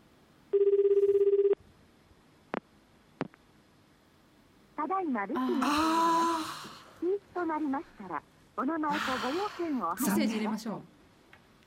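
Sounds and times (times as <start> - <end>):
warbling telephone ringback tone on an outgoing call: 0.5 - 1.6
speech: 5.0 - 6.4, 7.0 - 10.9.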